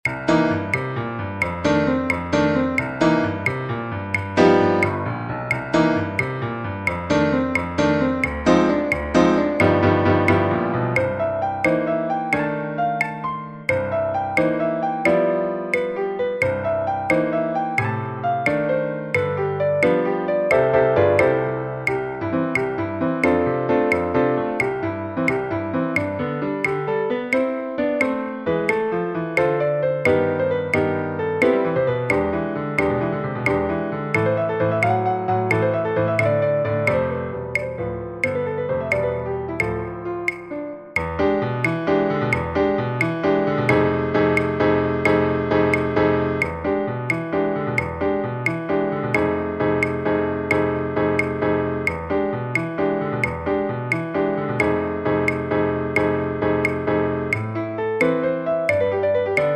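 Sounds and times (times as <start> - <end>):
blues piano at 88 bpm: 0.0 - 59.5.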